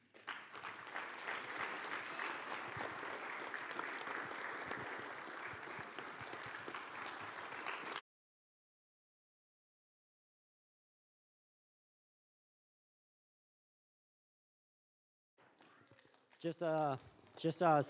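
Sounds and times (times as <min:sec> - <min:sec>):
church audience clapping in welcome: 0:00.0 - 0:08.0, 0:15.4 - 0:17.8.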